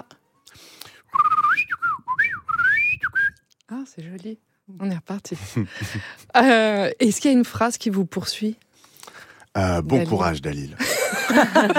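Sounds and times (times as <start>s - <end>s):
person whistling an imitation of birdsong: 1.1s - 3.4s
speech: 3.8s - 8.6s, 9.6s - 11.7s
laughter: 10.8s - 11.7s.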